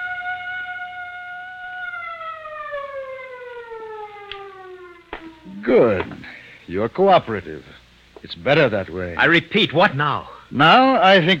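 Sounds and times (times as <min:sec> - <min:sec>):
loud siren wailing and winding down: 0:00.0 - 0:06.2
speech: 0:05.6 - 0:06.1, 0:06.7 - 0:11.3.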